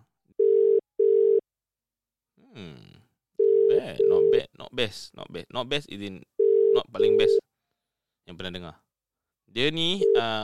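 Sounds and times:
telephone ringing tone while placing a call: 0.4s - 1.4s, 3.4s - 4.4s, 6.4s - 7.4s, 10.0s - 10.4s
speech: 4.8s - 7.4s, 8.3s - 8.8s, 9.5s - 10.4s.

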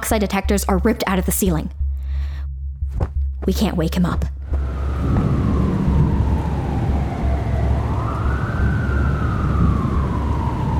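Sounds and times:
heavy rumbling wash of low noise: 0.0s - 10.7s
speech: 0.1s - 1.8s, 3.0s - 5.2s
ambulance siren wailing: 4.6s - 10.7s.

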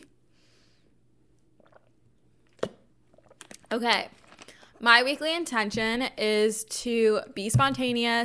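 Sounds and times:
person with a sore throat sipping water: 1.4s - 4.7s
gulp swallowing water: 1.6s - 3.7s
wet mouth clicks: 1.6s - 3.7s
speech: 3.7s - 4.2s, 4.8s - 8.2s.

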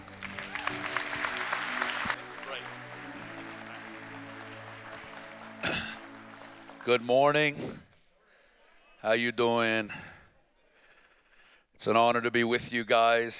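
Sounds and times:
quieter sustained musical tones: 0.0s - 7.4s
audience applause welcoming a guest speaker: 0.0s - 7.6s
speech: 6.8s - 7.8s, 9.0s - 10.1s, 11.8s - 13.3s.

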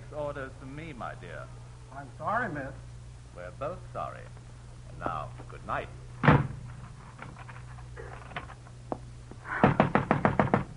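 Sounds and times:
speech: 0.2s - 6.4s
heavy thump: 6.2s - 6.6s
loud insistent knocking on a locked door: 9.6s - 10.7s.

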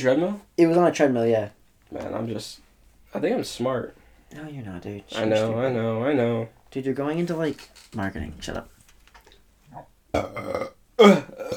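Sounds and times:
speech: 0.0s - 8.7s, 9.8s - 11.5s
loud, guttural burps: 9.7s - 11.5s.

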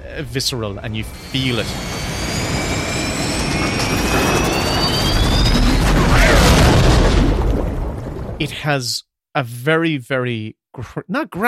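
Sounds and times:
heavy rumbling: 0.0s - 8.6s
high whining tones sliding downward: 0.1s - 7.1s
airplane jet engine roar during a crash at night: 0.1s - 8.3s
speech: 0.2s - 2.0s, 8.4s - 11.4s
rushing wind: 0.9s - 8.4s.

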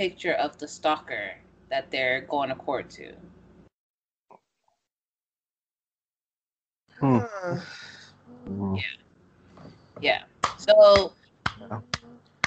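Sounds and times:
speech: 0.0s - 3.4s, 7.0s - 9.0s, 10.0s - 12.0s
one person clapping hands: 10.4s - 12.4s.

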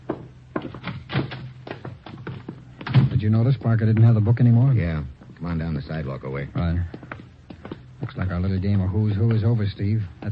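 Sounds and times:
low steady hum: 0.0s - 10.3s
apartment door closing with a solid thunk: 2.8s - 3.2s
speech: 3.2s - 7.2s, 8.0s - 10.3s.

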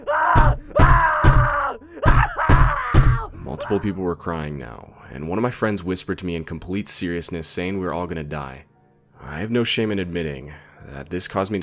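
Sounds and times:
man dressed as a clown screaming and wailing: 0.0s - 4.0s
banging on a classroom door with heavy thuds: 0.3s - 3.3s
speech: 3.7s - 11.6s.

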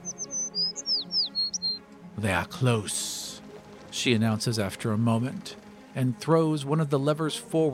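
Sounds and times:
bird calling in high sharp whistling chirps: 0.0s - 1.8s
speech: 2.2s - 3.2s, 4.0s - 7.7s.

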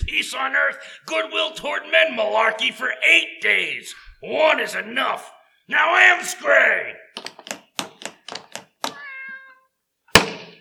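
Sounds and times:
speech: 0.2s - 7.6s
cat meowing: 8.9s - 9.8s.

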